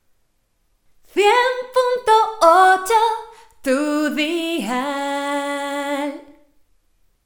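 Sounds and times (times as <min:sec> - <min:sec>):
woman singing a radio station jingle: 0:01.1 - 0:06.4.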